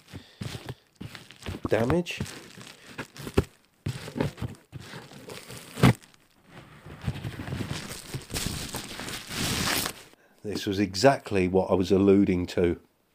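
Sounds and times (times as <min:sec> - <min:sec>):
envelope holding a tabletop role-playing game being handled and crinkled: 0:00.0 - 0:10.2
speech: 0:01.7 - 0:02.5, 0:10.5 - 0:12.9.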